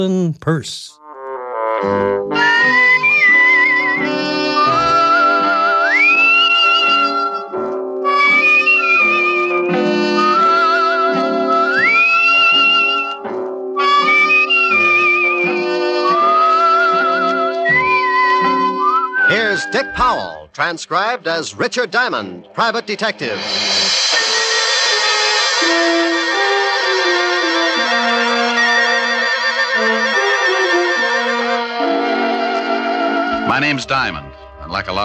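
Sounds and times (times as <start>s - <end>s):
speech: 0.0s - 1.0s, 1.8s - 2.8s, 4.0s - 4.3s, 19.8s - 23.8s, 33.6s - 35.0s
full instrumental accompaniment: 1.0s - 20.5s, 21.6s - 35.0s
man whistling a lilting theme tune: 4.6s - 7.5s, 8.1s - 13.2s, 13.8s - 20.0s.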